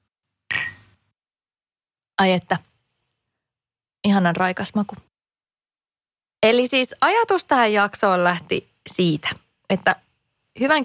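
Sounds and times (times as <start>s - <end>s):
two glasses of freshly poured cider clinking in a toast: 0.5s - 0.9s
speech: 2.2s - 2.7s, 4.0s - 5.1s, 6.4s - 10.0s, 10.6s - 10.8s.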